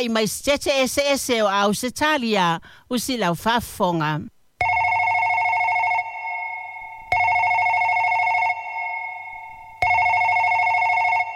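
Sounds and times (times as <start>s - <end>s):
speech: 0.0s - 4.4s
telephone ringing with buzzing electronic rings: 4.6s - 11.3s.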